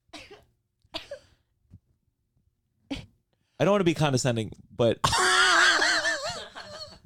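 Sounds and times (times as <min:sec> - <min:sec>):
short small coughs: 0:00.1 - 0:01.4, 0:02.9 - 0:03.2
speech: 0:03.6 - 0:05.3.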